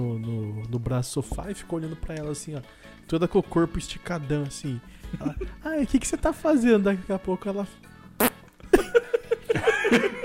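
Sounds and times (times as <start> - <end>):
speech: 0.7 - 7.9
laughter: 5.1 - 5.6, 8.7 - 10.2
voice imitating a pug's fart: 8.2 - 8.4.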